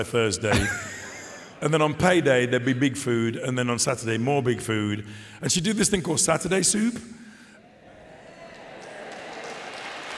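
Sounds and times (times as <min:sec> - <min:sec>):
speech: 0:00.0 - 0:00.9, 0:01.6 - 0:07.3
laughter: 0:00.4 - 0:02.8
audience applause: 0:08.0 - 0:10.1.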